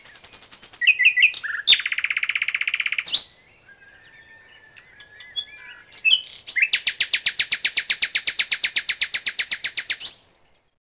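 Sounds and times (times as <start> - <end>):
bird song with chirps, buzzy trill and twittering: 0.0 - 10.8.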